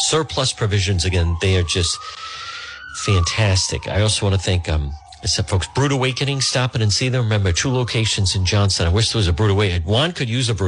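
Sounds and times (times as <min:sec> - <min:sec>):
emergency vehicle siren wailing: 0:00.0 - 0:10.6
speech: 0:00.1 - 0:02.4, 0:03.0 - 0:10.6.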